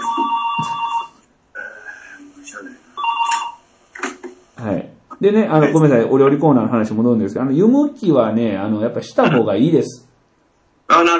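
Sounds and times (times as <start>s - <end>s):
telephone ringing with bright warbling electronic tone: 0.0s - 1.2s, 3.0s - 3.6s
speech: 5.2s - 10.1s, 11.0s - 11.1s.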